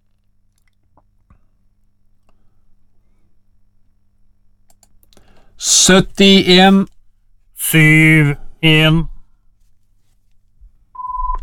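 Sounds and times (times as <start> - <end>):
speech: 5.6 - 7.0, 7.7 - 9.1
telephone ringing tone on an outgoing call: 11.0 - 11.4.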